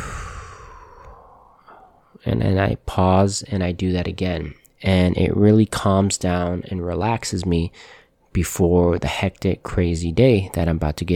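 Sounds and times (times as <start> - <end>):
deep breath exhale: 0.0 - 2.2
speech: 2.2 - 11.1.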